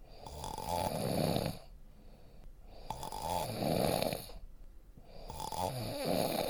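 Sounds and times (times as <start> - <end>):
person snoring: 0.1 - 1.7, 2.7 - 4.4, 5.1 - 6.4.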